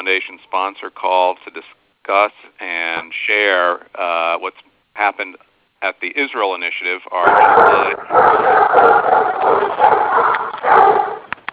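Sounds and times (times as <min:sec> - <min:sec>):
speech: 0:00.0 - 0:10.2
dogs barking and yapping: 0:07.2 - 0:11.3.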